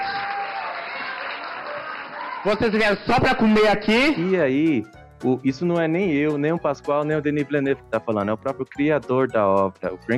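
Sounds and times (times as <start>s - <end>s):
crowd applause: 0.0s - 3.1s
speech: 2.4s - 10.1s.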